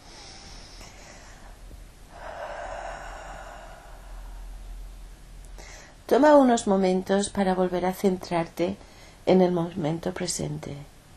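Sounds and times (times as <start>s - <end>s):
slow deep breathing during a guided meditation: 0.0s - 6.0s
speech: 6.1s - 10.9s.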